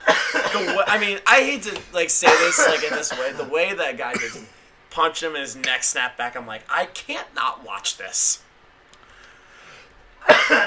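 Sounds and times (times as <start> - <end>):
person coughing after choking on a drink: 0.0 - 1.1, 2.2 - 3.5, 4.1 - 4.6, 10.2 - 10.6
speech: 0.6 - 8.5.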